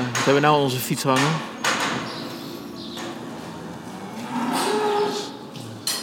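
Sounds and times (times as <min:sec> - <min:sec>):
speech: 0:00.2 - 0:01.5
cows mooing in a barn: 0:03.2 - 0:05.6.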